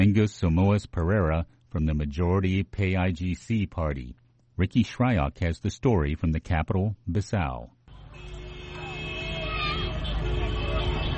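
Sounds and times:
speech: 0.2s - 8.3s
busy street traffic with cars passing: 7.9s - 11.1s.

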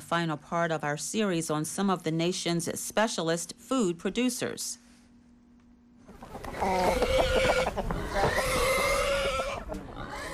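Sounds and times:
speech: 0.1s - 4.8s, 6.6s - 8.3s
chickens clucking on a farm north of Johannesburg: 6.0s - 10.3s
chickens scrabbling in dirt on a farm: 6.2s - 9.6s.

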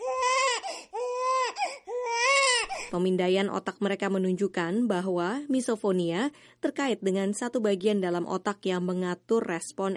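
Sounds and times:
baby crying: 0.0s - 3.0s
speech: 2.9s - 9.9s.

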